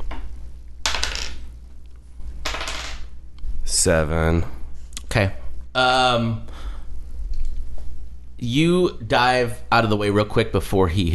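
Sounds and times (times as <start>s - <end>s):
low steady hum: 0.0s - 11.1s
dice rattling and clattering across a hard surface: 0.8s - 1.5s, 2.4s - 3.1s
speech: 3.8s - 4.6s, 5.2s - 6.7s, 8.4s - 11.1s.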